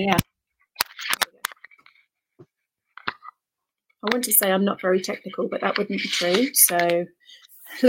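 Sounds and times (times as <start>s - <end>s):
speech: 0.0s - 0.3s, 4.0s - 7.8s
thick high-quality paper pages rustling in a planner: 0.8s - 2.0s, 3.0s - 3.3s, 5.0s - 7.0s.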